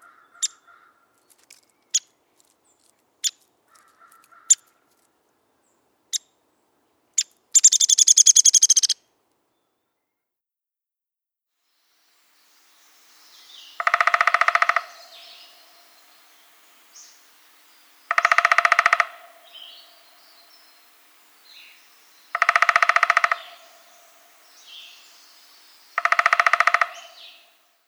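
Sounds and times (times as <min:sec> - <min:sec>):
Downy woodpecker drumming in short rapid rolls: 0:07.6 - 0:09.0, 0:12.9 - 0:27.6.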